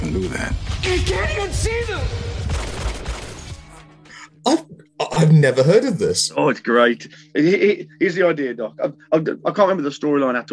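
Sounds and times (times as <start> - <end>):
speech: 0.1 - 2.6, 5.2 - 10.5
rapid dense volley of heavy booming gunshots: 0.6 - 3.8.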